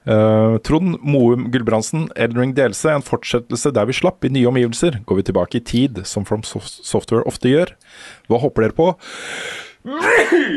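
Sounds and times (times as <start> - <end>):
speech: 0.0 - 10.5
sneeze: 9.9 - 10.5.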